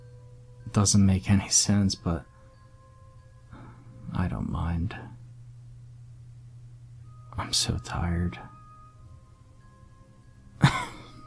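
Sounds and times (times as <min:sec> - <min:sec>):
speech: 0:00.7 - 0:02.3, 0:04.2 - 0:05.1, 0:07.4 - 0:08.5
harsh cough with raspy breathy tail: 0:10.6 - 0:11.2.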